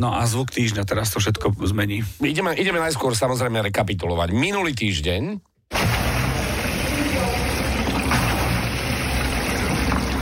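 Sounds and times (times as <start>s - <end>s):
speech: 0.0s - 5.5s
water sloshing in the water resistance tank of a rowing machine: 5.7s - 10.2s.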